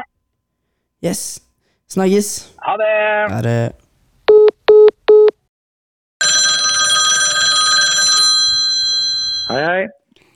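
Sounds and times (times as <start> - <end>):
speech: 1.0 - 3.8, 9.5 - 10.0
telephone ringing tone before a call: 6.2 - 9.7.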